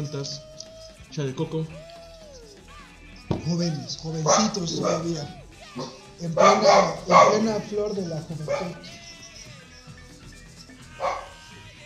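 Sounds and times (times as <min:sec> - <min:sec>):
speech: 0:00.0 - 0:00.5, 0:01.1 - 0:01.9, 0:03.3 - 0:09.0
small dog barking: 0:04.2 - 0:07.7, 0:08.4 - 0:08.9, 0:11.0 - 0:11.3.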